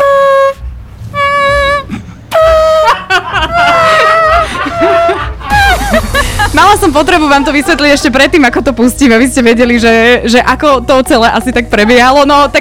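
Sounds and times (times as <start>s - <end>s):
voice imitating a trumpet with the mouth: 0.0s - 3.0s
laughter: 1.9s - 8.6s
speech: 6.8s - 12.5s.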